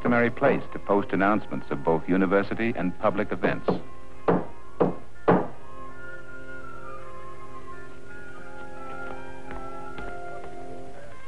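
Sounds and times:
speech: 0.1 - 4.0
hammer blows on a wooden door: 3.5 - 5.6.

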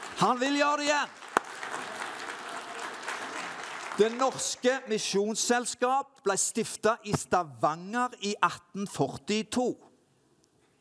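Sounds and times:
audience applause: 0.0 - 4.6
speech: 0.2 - 1.9, 4.0 - 9.9.

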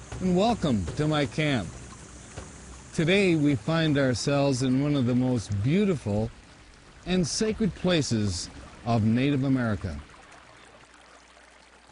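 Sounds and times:
creek water flowing over rocks: 0.0 - 11.8
speech: 0.2 - 1.8, 3.0 - 6.4, 7.0 - 10.1.

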